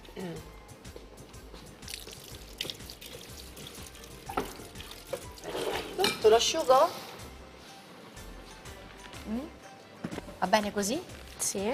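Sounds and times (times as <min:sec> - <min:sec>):
faint drips: 0:01.6 - 0:05.5
running water pouring as hair is washed during a haircut: 0:01.7 - 0:06.9
speech: 0:06.3 - 0:07.0, 0:10.4 - 0:11.7.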